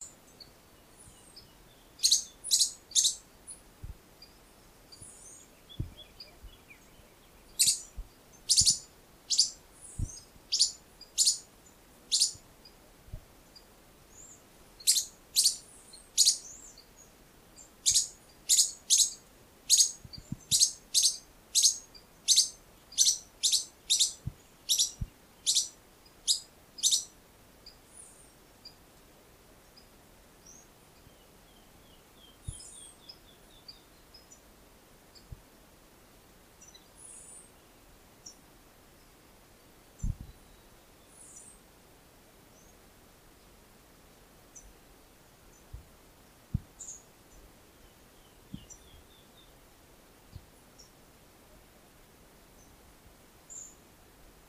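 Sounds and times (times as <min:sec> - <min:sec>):
Pallid Spinetail singing: 0:00.0 - 0:03.6, 0:04.2 - 0:12.4, 0:13.5 - 0:28.8, 0:29.6 - 0:34.4, 0:45.5 - 0:49.6, 0:53.5 - 0:53.8.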